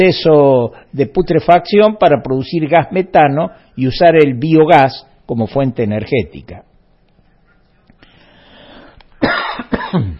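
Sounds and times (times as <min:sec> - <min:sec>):
speech: 0:00.0 - 0:06.7, 0:09.9 - 0:10.1
person with a lingering cough coughing: 0:09.2 - 0:10.1.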